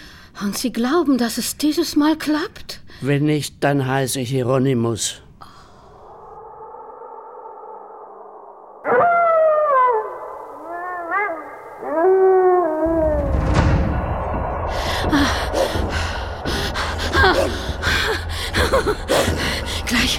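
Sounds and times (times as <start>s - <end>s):
speech: 0.4s - 5.2s
wolf howling: 6.1s - 20.1s
noisy rumbling scuffle with harsh bursts: 12.8s - 20.1s
laughter: 16.7s - 19.9s.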